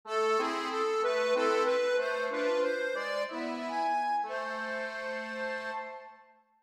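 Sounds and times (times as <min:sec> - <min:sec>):
accordion sting: 0:00.1 - 0:06.2.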